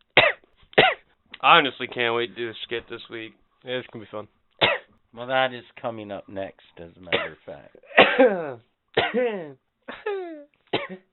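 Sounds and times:
harsh voiced coughs from one person: 0:00.2 - 0:01.0, 0:04.6 - 0:04.9, 0:07.1 - 0:09.4, 0:10.2 - 0:11.1
speech: 0:01.4 - 0:04.4, 0:05.2 - 0:10.0, 0:10.9 - 0:11.1.

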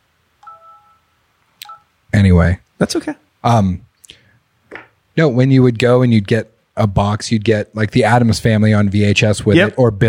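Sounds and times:
phone ringing with a short electronic tone: 0:00.4 - 0:01.9
speech: 0:02.2 - 0:03.9, 0:05.2 - 0:10.0.

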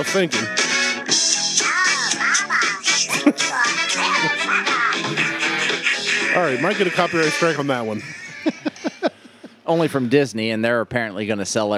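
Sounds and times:
speech: 0:00.0 - 0:01.4, 0:03.2 - 0:05.4, 0:06.1 - 0:08.6, 0:09.7 - 0:11.7
disco-style song sung in a nasal squawky duck-like voice: 0:00.0 - 0:08.5
laughter: 0:03.0 - 0:03.6, 0:07.9 - 0:09.6.

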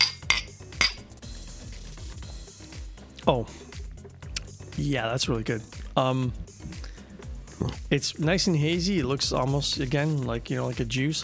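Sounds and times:
glasses of a hazy drink clinking in a toast: 0:00.0 - 0:01.0
speech: 0:03.2 - 0:03.7, 0:04.8 - 0:06.8, 0:07.6 - 0:11.2.

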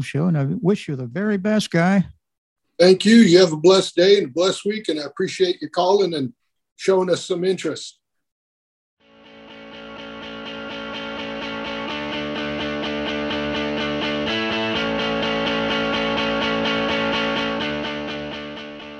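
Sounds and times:
speech: 0:00.0 - 0:02.2, 0:02.8 - 0:08.0
distorted effects-laden guitar playing a rhythmic pattern: 0:09.0 - 0:18.9
upbeat instrumental theme music with distorted effects-laden guitar: 0:09.4 - 0:18.9.

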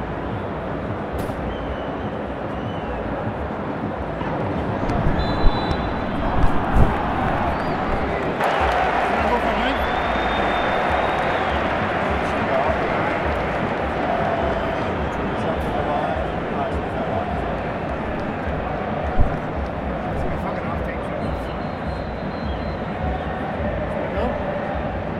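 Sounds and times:
football stadium crowd roar at Wembley: 0:00.0 - 0:25.1
faint high whistles: 0:01.2 - 0:03.1, 0:05.1 - 0:18.5, 0:21.2 - 0:23.6
people clapping: 0:04.8 - 0:25.1
people shouting: 0:06.0 - 0:20.0.

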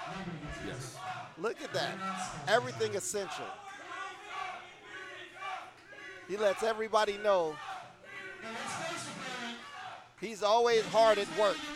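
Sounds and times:
large crowd chanting at a wrestling event: 0:00.0 - 0:11.7
speech: 0:00.1 - 0:03.6, 0:06.3 - 0:07.7, 0:08.4 - 0:09.2, 0:10.2 - 0:11.7.

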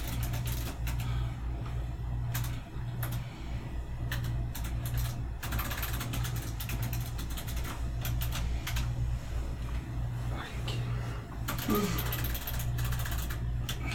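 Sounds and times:
clicky mechanical keyboard being typed on: 0:00.0 - 0:01.0, 0:02.3 - 0:03.2, 0:04.1 - 0:08.9, 0:11.5 - 0:13.8
steady low electrical hum: 0:00.0 - 0:13.9.

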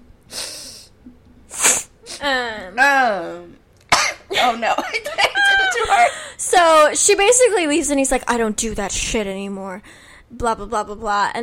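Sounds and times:
person sneezing: 0:00.3 - 0:02.3
speech: 0:02.2 - 0:03.6, 0:04.4 - 0:11.4.

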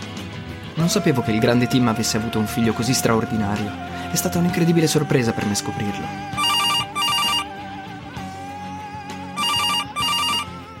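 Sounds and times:
speech: 0:00.8 - 0:06.6
telephone ringing with electronic trills: 0:06.4 - 0:07.6, 0:09.4 - 0:10.6.

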